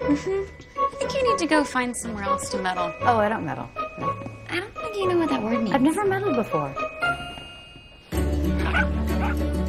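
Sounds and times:
speech: 0:00.1 - 0:00.6, 0:01.3 - 0:06.9
several dogs barking in a yard: 0:08.6 - 0:09.5.

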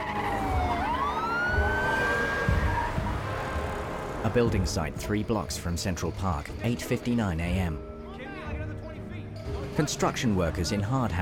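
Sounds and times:
police siren wailing on vehicles speeding by: 0:00.0 - 0:04.3
rumbling traffic: 0:00.0 - 0:07.7
speech: 0:04.2 - 0:07.9, 0:09.8 - 0:11.2.

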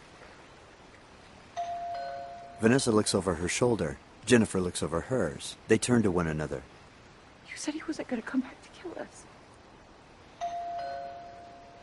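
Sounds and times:
quiet hiss: 0:00.0 - 0:11.8
doorbell chime: 0:01.6 - 0:02.8, 0:10.4 - 0:11.8
speech: 0:02.6 - 0:06.7, 0:07.5 - 0:09.4.

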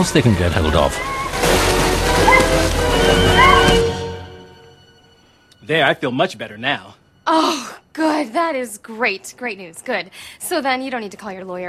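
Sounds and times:
speech: 0:00.0 - 0:01.7, 0:05.7 - 0:11.6
rising squeaky tones: 0:00.2 - 0:05.5
water sloshing and gulping during a big sip: 0:00.8 - 0:04.0.

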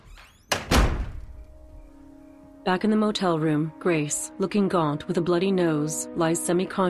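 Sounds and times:
bathroom door slamming shut: 0:00.0 - 0:01.5
speech: 0:02.6 - 0:06.8.

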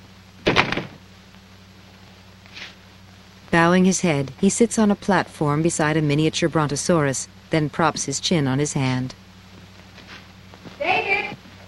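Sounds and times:
low steady hum: 0:00.0 - 0:11.6
museum door swinging shut with a rattling thud: 0:00.4 - 0:01.0
speech: 0:03.5 - 0:09.2
footsteps of someone striding briskly out: 0:08.8 - 0:11.6.

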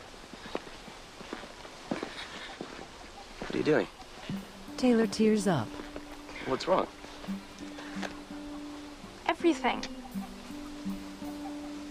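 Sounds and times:
footsteps of people walking off: 0:00.0 - 0:04.6, 0:05.2 - 0:09.0
low hiss: 0:00.0 - 0:11.9
speech: 0:03.5 - 0:05.8, 0:06.4 - 0:07.5, 0:09.5 - 0:10.0.

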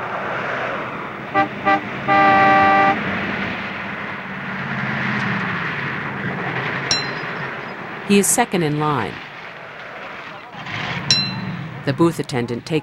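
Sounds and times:
car roaring off out of a driveway: 0:00.0 - 0:12.8
steady road noise: 0:00.0 - 0:12.8
car horn toots and long blast: 0:01.3 - 0:03.2
speech: 0:08.1 - 0:09.3, 0:11.9 - 0:12.8.

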